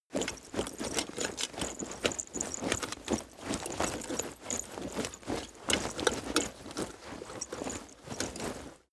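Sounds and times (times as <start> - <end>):
hard leather and metal movement: 0.1 - 8.9.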